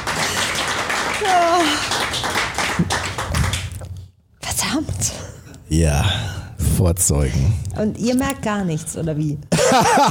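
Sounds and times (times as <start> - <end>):
crowd applauding: 0.0 - 3.7
speech: 1.2 - 1.8, 5.7 - 10.0.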